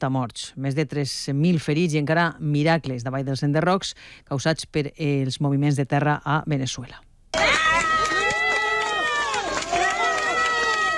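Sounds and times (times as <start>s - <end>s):
speech: 0.0s - 7.1s
crowd cheering and shouting for a rescued earthquake survivor: 7.3s - 10.9s
crowd clapping for a rescued earthquake survivor in Venezuela: 7.4s - 10.9s.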